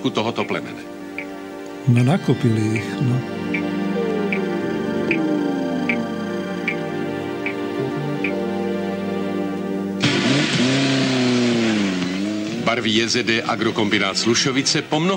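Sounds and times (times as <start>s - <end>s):
speech: 0.0s - 1.0s, 1.8s - 3.7s, 5.1s - 5.6s, 12.7s - 15.1s
race car engines revving at an automobile racing event: 3.5s - 14.2s.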